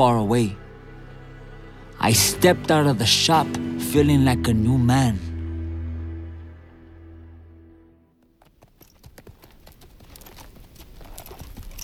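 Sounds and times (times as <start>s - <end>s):
speech: 0.0s - 0.6s, 2.0s - 5.3s
low sustained drone: 0.0s - 8.1s
horse hooves clip-clopping on a hard surface: 8.2s - 11.8s.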